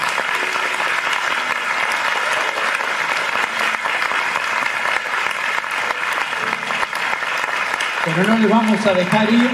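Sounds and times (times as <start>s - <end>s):
crowd clapping: 0.0s - 9.5s
speech: 8.2s - 9.5s.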